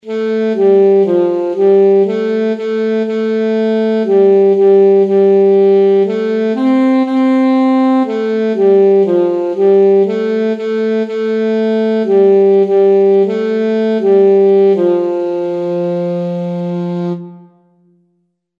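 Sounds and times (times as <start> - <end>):
alto saxophone playing a children's song: 0.0 - 18.3.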